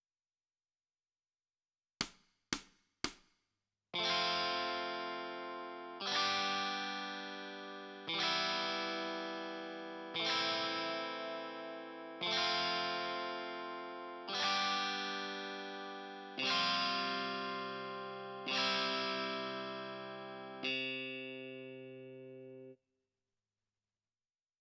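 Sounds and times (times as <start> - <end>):
guitar: 4.0 - 22.8.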